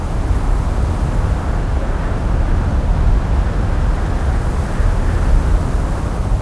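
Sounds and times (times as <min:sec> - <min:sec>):
sandstorm: 0:00.0 - 0:06.4.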